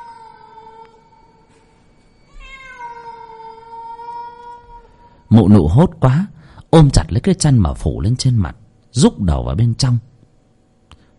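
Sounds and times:
cat meowing loudly outside a window: 0:02.3 - 0:05.0
speech: 0:05.3 - 0:10.1.

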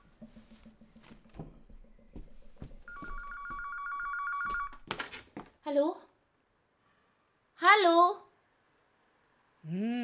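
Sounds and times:
telephone ringing with a bright electronic trill: 0:02.9 - 0:04.9
speech: 0:05.7 - 0:06.1.

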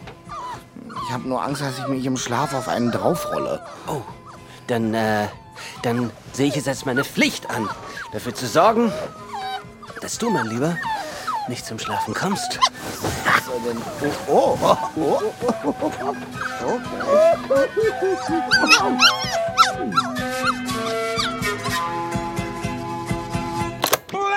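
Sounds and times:
busy musical backing: 0:00.0 - 0:24.2
dog barking, yipping and whimpering: 0:00.1 - 0:22.1
speech: 0:01.1 - 0:09.2, 0:10.0 - 0:20.1
laughter: 0:12.8 - 0:20.1.

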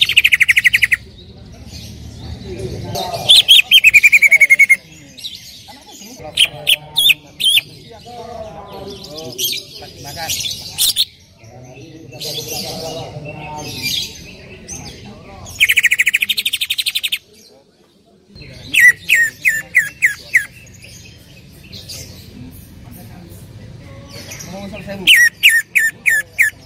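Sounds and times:
Greater green leafbird chattering: 0:00.0 - 0:07.9, 0:09.4 - 0:11.4, 0:13.6 - 0:17.4, 0:18.4 - 0:22.8, 0:24.1 - 0:26.6
Greater green leafbird trilling and chipping: 0:00.0 - 0:07.9, 0:13.6 - 0:17.5, 0:18.4 - 0:22.3, 0:24.1 - 0:26.6.

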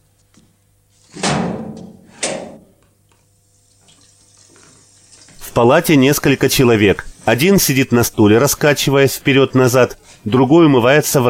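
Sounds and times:
heavy metal door of a hospital ward opening: 0:01.1 - 0:02.8
speech: 0:05.6 - 0:11.2.

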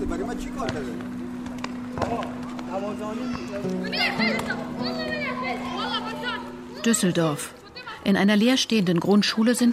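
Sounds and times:
speech: 0:00.1 - 0:01.1, 0:02.0 - 0:09.7
children shouting and playing in the yard of an empty primary school: 0:02.2 - 0:08.1.

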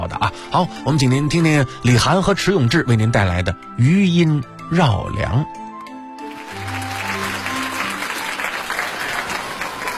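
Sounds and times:
speech: 0:00.3 - 0:05.6
audience applause at a live crosstalk comedy performance: 0:06.2 - 0:09.9.

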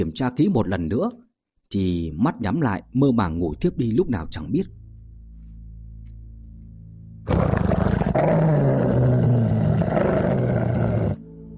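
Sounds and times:
speech: 0:00.0 - 0:04.8
dog growling deeply: 0:07.3 - 0:11.2.

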